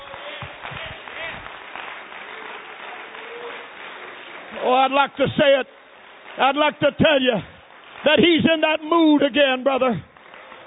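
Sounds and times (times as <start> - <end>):
audience applause: 0.0 - 9.3, 10.0 - 10.6
speech: 4.6 - 5.8, 6.4 - 10.1.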